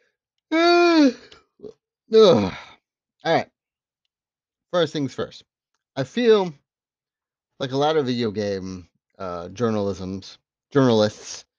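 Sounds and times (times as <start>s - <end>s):
person yawning: 0.5s - 1.4s, 2.1s - 2.8s
speech: 1.0s - 2.6s, 3.2s - 3.5s, 4.7s - 6.6s, 7.6s - 11.5s.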